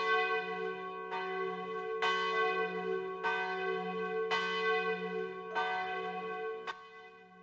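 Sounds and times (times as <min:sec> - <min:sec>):
church bells chiming the quarters: 0:00.0 - 0:07.4.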